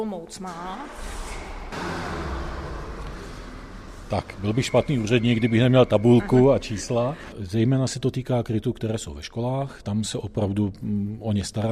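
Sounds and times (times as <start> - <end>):
speech: 0.0 - 2.4, 4.1 - 11.7
car driving past: 0.6 - 8.0
low hum: 0.6 - 8.4.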